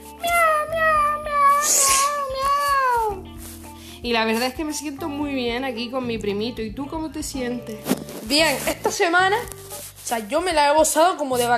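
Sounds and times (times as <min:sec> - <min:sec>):
small cat meowing: 0:00.1 - 0:03.2
speech: 0:04.0 - 0:11.5.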